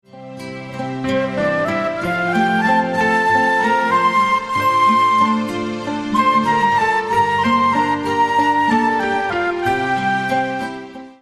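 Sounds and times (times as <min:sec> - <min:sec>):
melody: 0:00.6 - 0:10.9.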